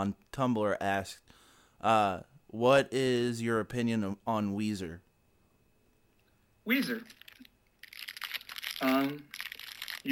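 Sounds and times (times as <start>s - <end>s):
speech: 0.0s - 5.0s, 6.6s - 7.2s, 8.8s - 9.4s
plastic snack wrapper crinkling: 7.0s - 10.1s.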